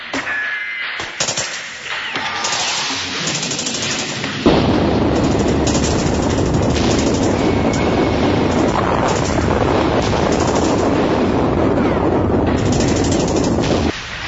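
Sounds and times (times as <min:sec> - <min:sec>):
distant rumbling gunfire in the night: 0:01.2 - 0:14.0
heavy artillery-like booms and thuds: 0:03.4 - 0:14.2.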